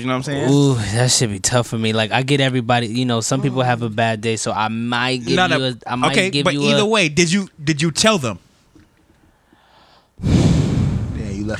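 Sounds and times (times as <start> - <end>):
speech: 0.0 - 8.4
man imitating a sniffing, smelling breath: 9.4 - 11.0.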